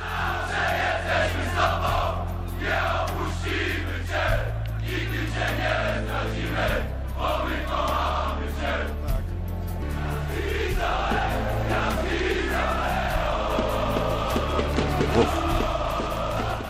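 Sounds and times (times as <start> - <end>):
large stadium crowd chanting in unison: 0.0 - 9.2, 9.8 - 16.6
steady low drumbeat: 13.1 - 16.6.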